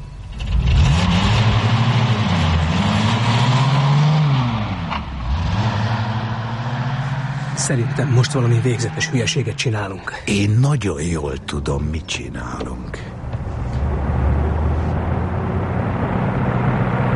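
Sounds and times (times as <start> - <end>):
car engine revving and accelerating: 0.4 - 9.7, 13.2 - 17.1
speech: 7.7 - 13.1.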